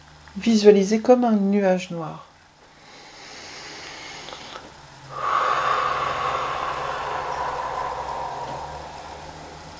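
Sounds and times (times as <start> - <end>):
speech: 0.4 - 2.3
long airy exhale during guided meditation: 2.8 - 9.7.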